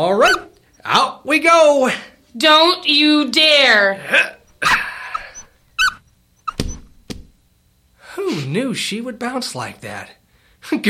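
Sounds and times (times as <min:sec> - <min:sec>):
speech: 0:00.0 - 0:04.8, 0:08.2 - 0:10.8
small dog yelping: 0:00.1 - 0:00.6, 0:04.5 - 0:07.0.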